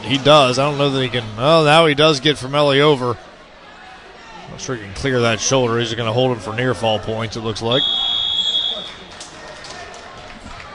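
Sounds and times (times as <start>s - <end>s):
murmuring arena noise: 0.0s - 10.7s
speech: 0.1s - 3.3s, 4.5s - 8.0s
wrestling match buzzer ending the second period: 7.8s - 8.9s.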